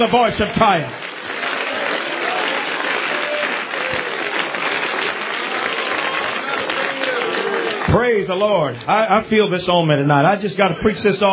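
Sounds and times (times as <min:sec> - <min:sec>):
speech: 0:00.0 - 0:01.0, 0:07.9 - 0:11.3
audience at a church service clapping hands in praise: 0:00.0 - 0:09.7
murmur of voices: 0:01.6 - 0:09.4.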